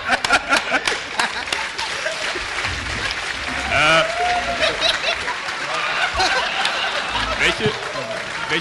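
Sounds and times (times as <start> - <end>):
audience clapping during a prize giveaway: 0.0 - 8.5
crowd chuckling: 0.0 - 8.5
murmured voices from the crowd: 3.4 - 8.5.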